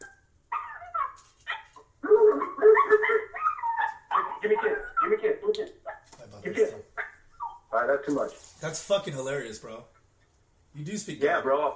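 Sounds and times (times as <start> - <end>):
dog whimpering: 0.0 - 6.0
speech: 8.0 - 10.0, 10.8 - 11.7.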